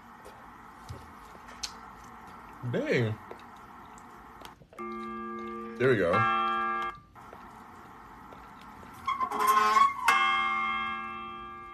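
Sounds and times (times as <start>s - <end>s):
speech: 2.6s - 3.2s, 5.8s - 6.4s
real church bell ringing played back from a video: 4.8s - 7.0s, 9.6s - 11.7s.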